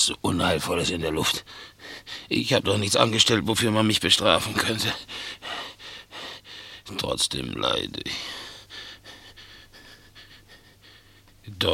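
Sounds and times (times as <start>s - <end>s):
speech: 0.0s - 5.7s, 6.9s - 8.4s, 11.5s - 11.7s
restless cat breathing laboriously while lying unable to sleep: 5.0s - 6.9s, 8.1s - 11.4s.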